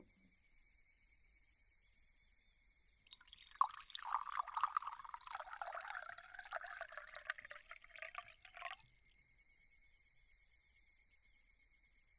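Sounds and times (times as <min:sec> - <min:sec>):
tea pouring into a cup: 0:03.0 - 0:09.1.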